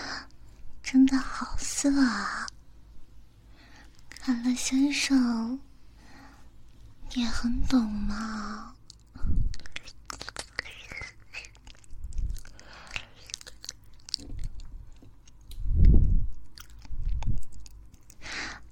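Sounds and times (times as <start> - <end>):
speech: 1.0 - 2.4, 4.2 - 5.7, 7.1 - 10.0
wet mouth chewing and smacking sounds: 8.8 - 18.6.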